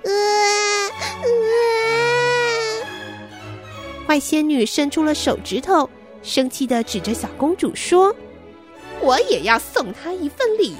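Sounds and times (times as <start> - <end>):
baby crying in fright: 0.0 - 3.0
speech: 4.1 - 8.3, 9.0 - 10.7.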